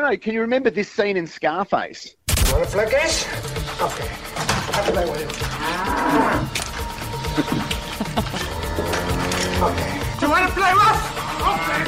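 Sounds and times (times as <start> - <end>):
speech: 0.0 - 6.6, 7.4 - 8.5, 9.6 - 11.8
cow mooing loudly with low groaning call: 5.5 - 6.6, 8.4 - 10.1
laughter: 7.2 - 10.2.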